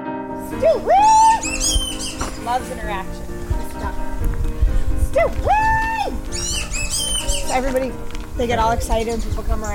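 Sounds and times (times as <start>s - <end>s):
speech: 0.5s - 4.1s, 5.2s - 9.7s
black-bellied whistling duck whistling call: 0.9s - 2.3s, 6.3s - 7.6s.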